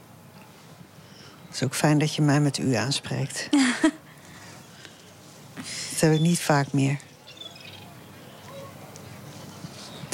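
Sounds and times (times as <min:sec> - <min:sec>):
speech: 0:01.5 - 0:04.0, 0:05.6 - 0:07.1
seagulls screaming on the seaside pier at Scheveningen: 0:06.0 - 0:08.8.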